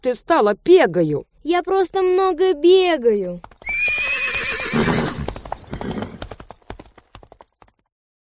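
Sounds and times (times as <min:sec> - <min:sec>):
speech: 0:00.0 - 0:03.6
horse hooves clip-clopping: 0:03.3 - 0:07.9
horse whinnying: 0:03.6 - 0:06.3.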